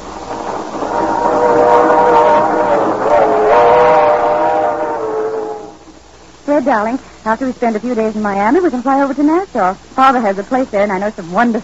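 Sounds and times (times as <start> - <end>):
train to Miami rumbling along tracks: 0.0 - 5.8
long wavering train whistle: 0.8 - 5.8
speech: 6.6 - 11.6.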